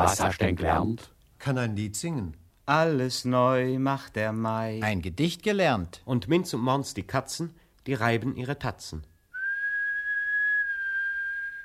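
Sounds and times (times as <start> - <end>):
speech: 0.0 - 9.1
person whistling a sustained clear high note: 9.3 - 11.6.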